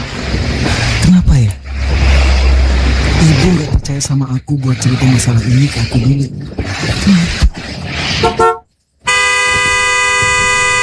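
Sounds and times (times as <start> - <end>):
rumbling street noise: 0.0 - 10.8
speech: 3.9 - 8.5
car horn honking: 8.2 - 10.8.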